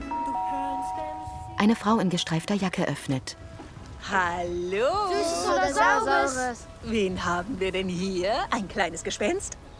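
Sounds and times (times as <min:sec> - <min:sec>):
electronic doorbell chime at a house front door: 0:00.1 - 0:02.5
speech: 0:01.6 - 0:03.4, 0:04.0 - 0:09.7.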